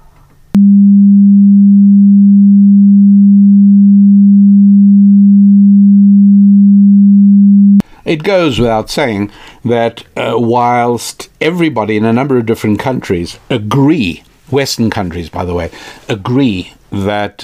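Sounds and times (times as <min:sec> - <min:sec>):
pure tone at 200 hertz: 0:00.0 - 0:07.8
speech: 0:08.0 - 0:17.4.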